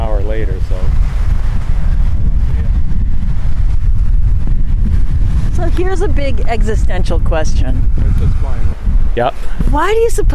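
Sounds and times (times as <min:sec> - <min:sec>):
west-northwest wind buffeting the microphone outdoors: 0:00.0 - 0:10.3
speech: 0:00.4 - 0:00.9, 0:05.8 - 0:10.3.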